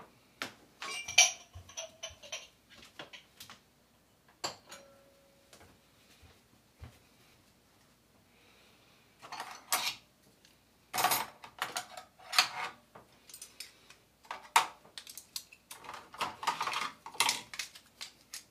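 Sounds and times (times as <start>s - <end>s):
dishes and cutlery knocking together while dishwashing: 0.8s - 3.3s, 4.4s - 5.0s, 9.2s - 10.0s, 11.0s - 13.7s, 15.7s - 17.5s.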